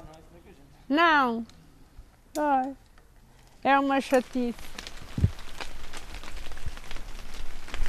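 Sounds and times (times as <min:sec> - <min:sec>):
speech: 0:00.9 - 0:01.6, 0:02.4 - 0:02.8, 0:03.6 - 0:04.8
steady rain pattering across a surface: 0:03.8 - 0:07.8.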